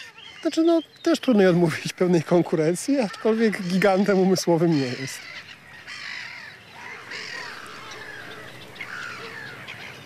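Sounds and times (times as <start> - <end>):
herring gull giving harsh squawking calls while diving at people: 0.0 - 0.6, 3.0 - 10.0
speech: 0.4 - 5.4.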